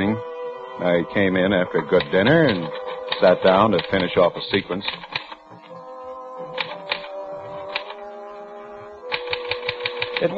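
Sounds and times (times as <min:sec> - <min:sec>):
steady tonal background: 0:00.0 - 0:10.3
speech: 0:00.8 - 0:05.1, 0:10.2 - 0:10.3
typewriter keys clacking: 0:02.0 - 0:04.2, 0:04.8 - 0:05.4, 0:06.6 - 0:08.0, 0:09.1 - 0:10.3.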